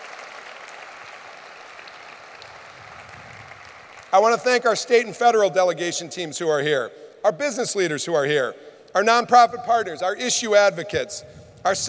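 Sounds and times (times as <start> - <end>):
audience applause: 0.0 - 4.1
speech: 4.1 - 11.8.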